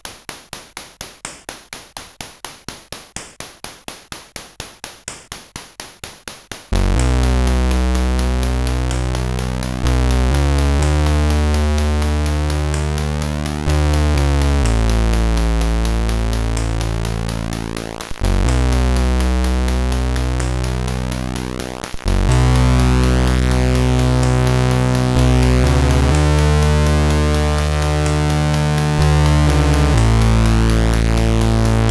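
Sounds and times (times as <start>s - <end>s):
tune on SID CSG8580R5 chip: 6.8s - 31.9s.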